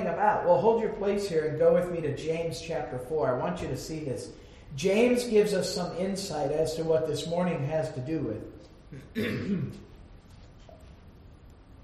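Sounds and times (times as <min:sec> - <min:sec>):
speech: 0:00.1 - 0:09.9
person with a sinus infection clearing throat: 0:08.9 - 0:09.9.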